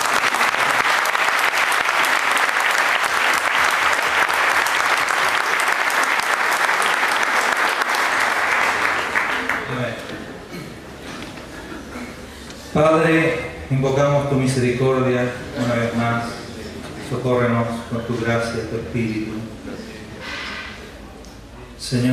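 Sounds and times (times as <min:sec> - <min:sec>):
large audience applause: 0:00.0 - 0:10.3
speech: 0:13.1 - 0:16.4, 0:17.1 - 0:19.7, 0:21.9 - 0:22.1.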